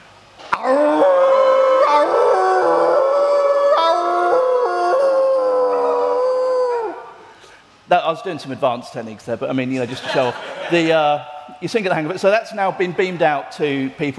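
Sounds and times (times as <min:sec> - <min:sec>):
person imitating a dog's howl: 0:00.5 - 0:07.2
speech: 0:08.1 - 0:14.1
laughter: 0:09.8 - 0:11.0.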